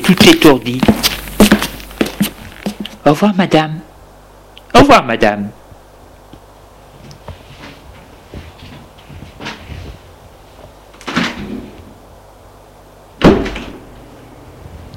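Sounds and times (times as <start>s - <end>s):
shuffling movement: 0.0s - 3.0s, 6.9s - 10.8s
speech: 0.1s - 1.0s, 3.0s - 3.9s, 4.7s - 5.6s
door shutting firmly: 11.0s - 11.8s, 13.2s - 13.8s.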